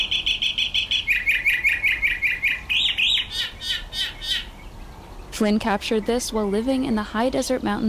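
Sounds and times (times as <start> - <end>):
mockingbird singing in the high desert mountains of Mexico: 0.0 - 7.8
speech: 5.4 - 7.8.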